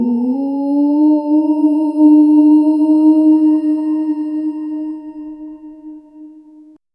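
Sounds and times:
peaceful ethereal hum: 0:00.0 - 0:06.8.

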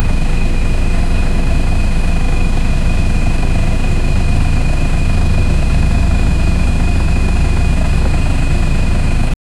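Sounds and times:
EMD 645 turbo diesel engine: 0:00.0 - 0:09.4.

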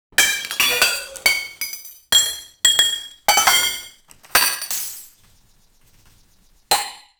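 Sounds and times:
plates falling and breaking: 0:00.1 - 0:05.3, 0:06.7 - 0:07.1.

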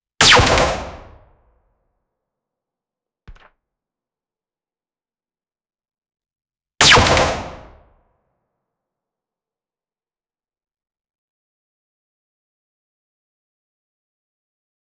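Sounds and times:
single sci-fi gun shot: 0:00.2 - 0:01.3, 0:06.8 - 0:07.9.

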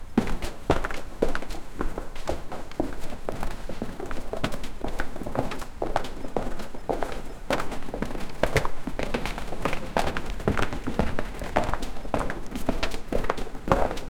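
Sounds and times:
scattered footsteps: 0:00.2 - 0:14.1.

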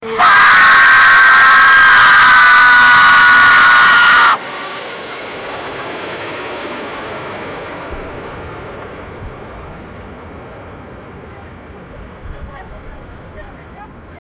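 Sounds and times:
passengers screaming on an aircraft: 0:00.0 - 0:04.4.

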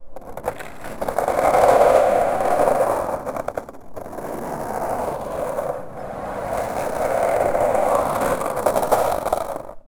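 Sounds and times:
continuous scraping of ice skating: 0:00.2 - 0:09.8.

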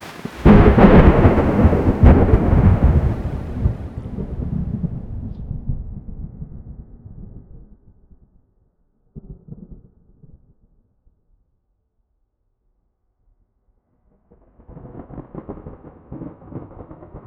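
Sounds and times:
extreme explosive thunder: 0:00.0 - 0:06.7.

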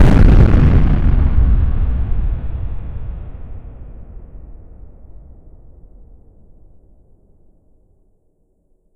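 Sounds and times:
atomic bomb explosion: 0:00.0 - 0:06.3.

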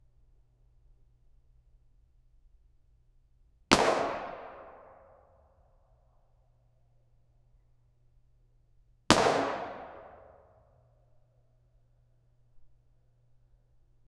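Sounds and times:
shotgun shot in a small room: 0:03.7 - 0:05.0, 0:09.1 - 0:10.4.

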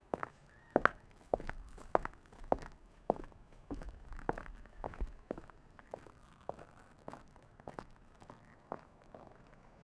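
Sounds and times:
footsteps on concrete: 0:00.1 - 0:06.6.

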